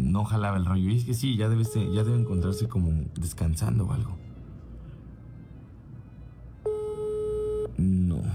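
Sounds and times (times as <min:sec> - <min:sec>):
speech: 0:00.2 - 0:04.3
telephone busy tone after a dropped call: 0:06.7 - 0:07.7.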